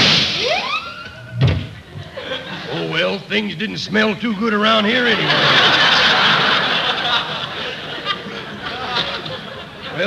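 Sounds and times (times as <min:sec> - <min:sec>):
gunshot sound effect in a Western comedy sketch: 0:00.0 - 0:00.7
laughter: 0:00.9 - 0:03.3, 0:04.4 - 0:10.0
speech: 0:02.8 - 0:05.8.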